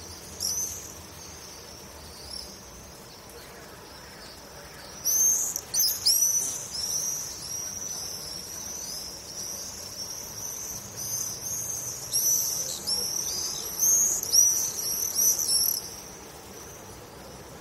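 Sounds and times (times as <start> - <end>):
swifts screaming: 0.0 - 17.5.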